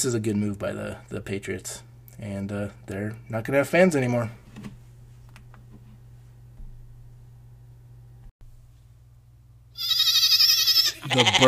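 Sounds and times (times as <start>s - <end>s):
speech: 0.0s - 4.8s, 11.1s - 11.4s
low steady hum: 0.0s - 11.4s
goat bleating: 9.8s - 11.4s.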